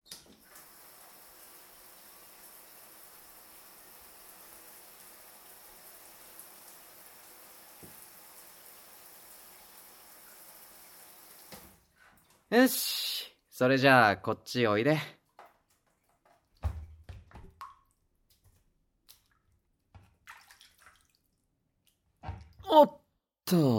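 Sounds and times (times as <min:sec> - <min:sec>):
shower water spraying: 0:00.3 - 0:11.8
speech: 0:12.5 - 0:15.2, 0:22.8 - 0:23.7
faint clicks and splashes: 0:15.2 - 0:22.6.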